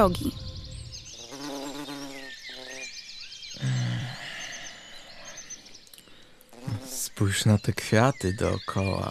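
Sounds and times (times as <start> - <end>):
speech: 0.0 - 0.6, 7.2 - 9.0
birds singing with chirping and twittering trills: 0.0 - 9.0
brief low voiced sounds: 3.6 - 5.4, 6.6 - 9.0.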